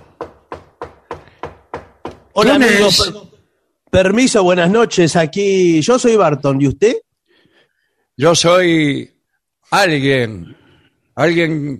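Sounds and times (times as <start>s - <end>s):
firm knocking on a door: 0.0s - 2.4s
speech: 2.4s - 3.3s, 3.9s - 7.0s, 8.2s - 9.1s, 9.7s - 10.6s, 11.2s - 11.7s.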